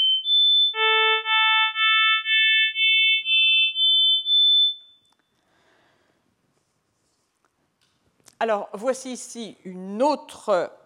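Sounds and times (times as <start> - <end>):
electronic harmonic tones losing lowest harmonics: 0.0 - 4.9
speech: 8.4 - 10.8.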